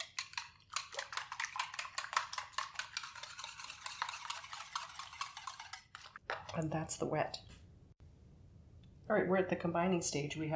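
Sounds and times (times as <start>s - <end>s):
whisking vanilla, eggs and 2% milk in a bowl for crepe batter: 0.0s - 6.2s
speech: 6.6s - 7.5s, 9.1s - 10.5s.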